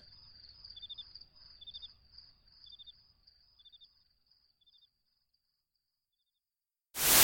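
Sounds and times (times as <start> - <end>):
live crickets chirping in high-pitched trill: 0.0 - 6.4
sudden loud burst of noise: 7.0 - 7.2.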